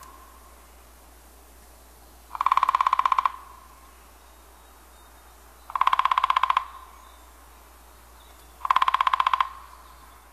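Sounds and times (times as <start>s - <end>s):
Downy woodpecker rattle calls: 2.3s - 4.0s, 5.6s - 7.4s, 8.1s - 10.3s.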